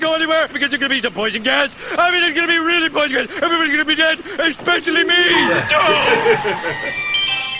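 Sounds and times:
speech: 0.3 - 7.1
voices and laughter: 5.3 - 7.2
ice cream truck jingle: 5.3 - 7.5.

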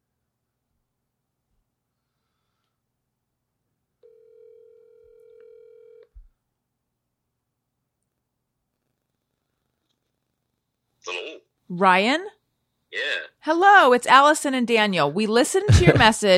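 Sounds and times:
outgoing phone call ringback tone: 4.0 - 6.1
speech: 11.1 - 16.3
laughter: 15.5 - 16.3.

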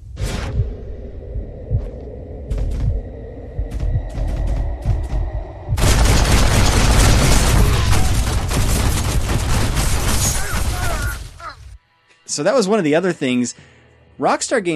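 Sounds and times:
low rumble: 0.0 - 9.5
gunfire in a Western open-world video game: 5.8 - 11.3
explosions in a Western open-world video game: 5.8 - 11.4
speech: 12.4 - 14.7.

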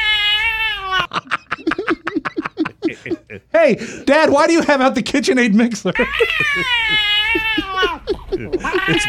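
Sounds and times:
cat meowing: 0.0 - 1.1, 6.0 - 8.0, 8.6 - 9.0
laughter: 1.1 - 3.5, 5.7 - 9.0
speech: 3.3 - 7.0, 8.4 - 9.0.

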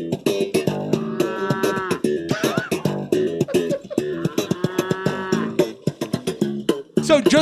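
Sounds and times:
sharp rhythmic plucked thumps: 0.0 - 7.4
cows mooing in a pasture: 0.7 - 2.1, 3.8 - 5.8
laughter: 1.2 - 5.6
speech: 7.1 - 7.4.

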